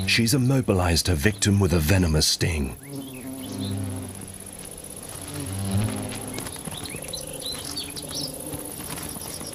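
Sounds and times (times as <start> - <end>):
faint birdsong: 0.0 - 9.5
insects chirping: 0.0 - 9.5
speech: 0.1 - 2.9
female beewolf wasp buzzing in flight carrying a paralyzed bee: 2.6 - 9.5.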